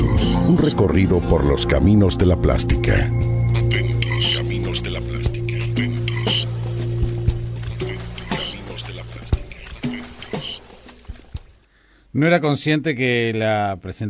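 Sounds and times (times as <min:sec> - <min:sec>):
short musical intro jingle with sustained low tones: 0:00.0 - 0:09.3
speech: 0:00.5 - 0:03.2, 0:12.2 - 0:14.0
watery drips: 0:03.5 - 0:11.7
splashy pops: 0:05.8 - 0:11.6.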